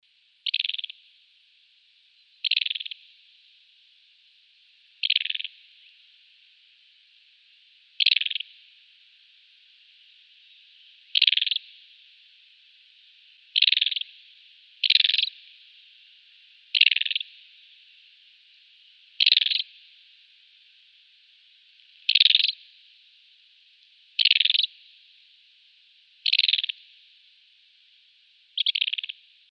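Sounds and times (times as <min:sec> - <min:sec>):
Desert Wheatear alarm call: 0:00.4 - 0:01.0, 0:02.4 - 0:03.0, 0:05.0 - 0:05.5, 0:08.0 - 0:08.4, 0:11.1 - 0:11.6, 0:13.6 - 0:14.0, 0:14.8 - 0:15.3, 0:16.7 - 0:17.2, 0:19.2 - 0:19.6, 0:22.1 - 0:22.6, 0:24.2 - 0:24.7, 0:26.2 - 0:26.8, 0:28.6 - 0:29.2.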